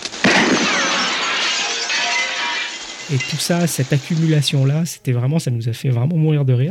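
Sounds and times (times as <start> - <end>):
window pane shattering from a stray bullet: 0.0 - 4.7
bright tinkling and scattering glass shards: 0.6 - 4.0
speech: 3.1 - 6.7.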